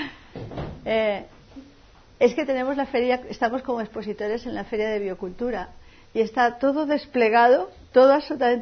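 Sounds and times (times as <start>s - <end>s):
door being shoved and rattled: 0.4s - 0.9s
speech: 0.9s - 1.4s, 2.2s - 8.5s.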